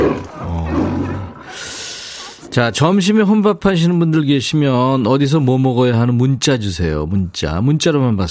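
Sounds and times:
lion roaring: 0.0s - 3.4s
speech: 2.6s - 8.2s.

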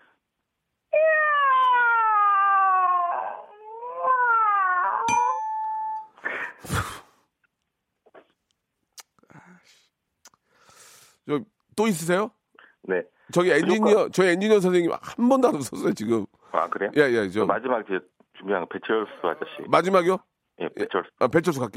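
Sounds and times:
person imitating a hungry cat meowing: 1.0s - 5.2s
speech: 11.3s - 21.7s.

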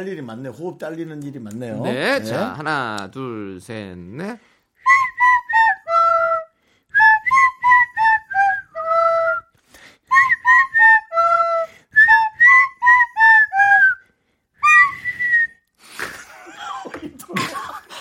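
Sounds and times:
speech: 0.0s - 5.0s
pipe playing a pop melody: 4.8s - 9.4s, 10.0s - 14.0s
radio host whistling: 4.8s - 15.6s
laughter-like sounds: 16.0s - 18.0s.

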